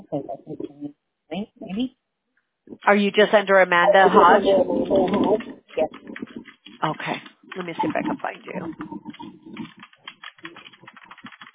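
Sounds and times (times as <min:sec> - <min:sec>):
speech: 0:00.1 - 0:00.8, 0:02.9 - 0:05.5, 0:06.8 - 0:09.0
typing on a computer keyboard: 0:05.0 - 0:11.5.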